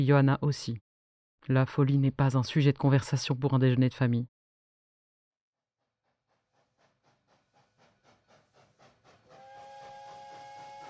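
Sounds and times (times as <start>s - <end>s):
speech: 0.0s - 0.8s, 1.5s - 4.3s
steam train chugging: 6.0s - 10.8s
loud sustained steam whistle: 8.8s - 10.8s.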